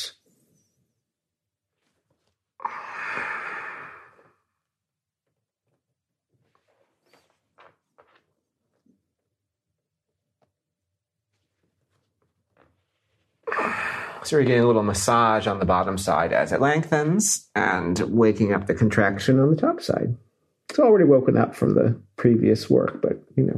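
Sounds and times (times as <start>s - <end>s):
breath during a guided slow-movement exercise: 2.6s - 4.4s
speech: 14.2s - 20.2s, 20.8s - 23.5s.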